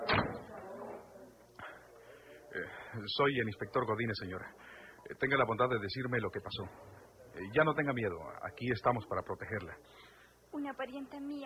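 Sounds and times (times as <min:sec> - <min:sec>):
door shutting with a loud thud: 0:00.0 - 0:00.5
speech: 0:02.5 - 0:11.4.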